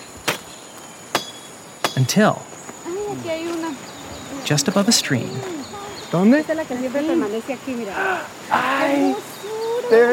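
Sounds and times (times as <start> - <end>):
steady hum of insects in the jungle: 0.0 - 10.1
machete chopping through jungle vegetation: 0.2 - 2.2
speech: 2.0 - 2.5, 4.4 - 9.3, 9.9 - 10.1.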